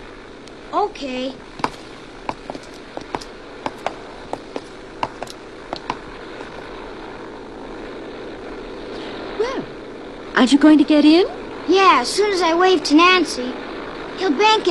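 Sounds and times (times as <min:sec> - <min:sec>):
Navion propeller airplane engine droning after takeoff: 0:00.0 - 0:14.6
speech: 0:00.7 - 0:01.5, 0:10.4 - 0:13.6, 0:14.2 - 0:14.6.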